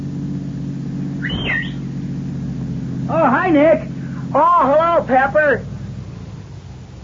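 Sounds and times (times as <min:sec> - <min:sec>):
car engine droning: 0:00.0 - 0:07.0
high-pitched squeal: 0:01.2 - 0:02.0
speech: 0:03.2 - 0:05.7.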